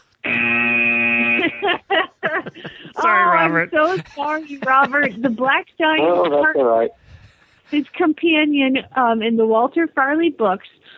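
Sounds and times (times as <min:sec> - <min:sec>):
game show buzzer: 0:00.2 - 0:01.7
laughter: 0:01.3 - 0:06.5
speech: 0:03.1 - 0:07.0, 0:07.7 - 0:10.9.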